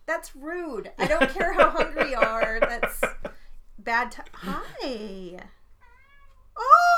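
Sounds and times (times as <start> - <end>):
faint tones: 0.0 - 6.9
speech: 0.1 - 3.0, 3.9 - 5.6
laughter: 1.0 - 3.4, 4.2 - 5.2
cat meowing: 5.8 - 6.6.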